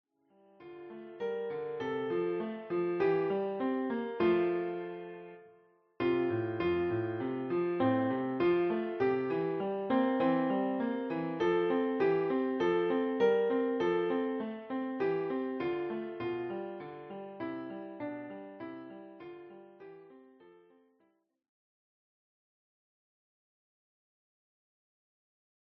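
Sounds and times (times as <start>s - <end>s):
piano playing a Christmas hymn: 0.6s - 20.4s.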